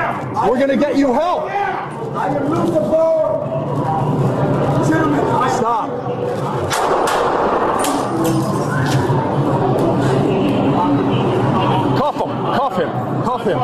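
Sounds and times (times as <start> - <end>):
crowd chatter: 0.0 - 13.6
speech: 0.4 - 9.0, 12.0 - 13.6
police gunfire at a man in a station: 6.7 - 8.6.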